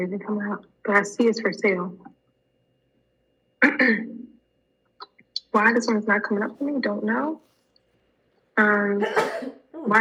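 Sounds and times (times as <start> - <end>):
speech: 0.0 - 2.1, 3.6 - 4.2, 5.5 - 7.5, 8.6 - 10.0
person sneezing: 9.0 - 9.6.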